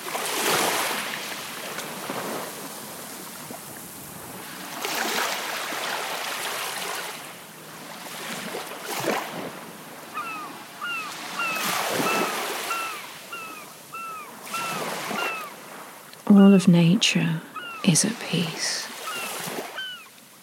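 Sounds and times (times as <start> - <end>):
sea waves washing on a beach on the coast of a bay: 0.0 - 20.4
bird chirping: 10.2 - 15.5, 17.5 - 17.9
speech: 16.4 - 18.9.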